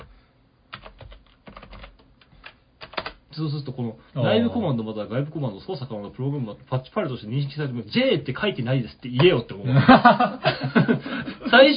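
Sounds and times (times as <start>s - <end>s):
typing on a computer keyboard: 0.7s - 3.2s
speech: 3.4s - 11.7s
laughter: 9.6s - 11.6s.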